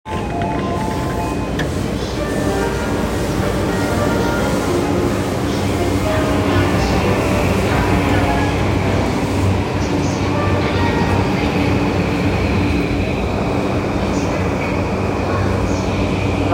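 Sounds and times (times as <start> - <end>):
Yamanote Line train at Gotanda running counterclockwise: 0.1 - 16.5.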